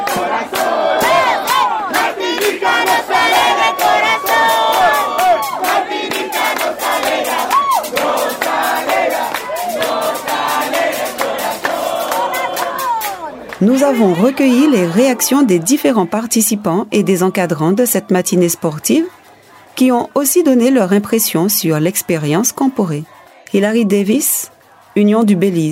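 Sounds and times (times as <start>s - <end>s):
sharp claps or stamps: 0.0s - 13.6s
large crowd of young voices at a youth sports event chanting a cheer: 0.0s - 25.7s
speech: 13.6s - 19.2s, 19.8s - 25.7s.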